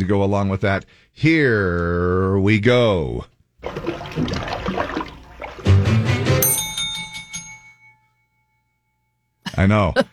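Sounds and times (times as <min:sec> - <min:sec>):
speech: 0:00.0 - 0:05.1, 0:09.6 - 0:10.1
rushing splashing noise: 0:03.6 - 0:06.4
two bells rung by quiz contestants: 0:06.1 - 0:09.3.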